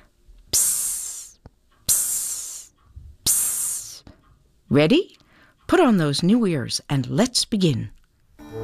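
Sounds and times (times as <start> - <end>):
loud bursts of steam hissing: 0.6 - 2.7
speech: 4.7 - 8.0.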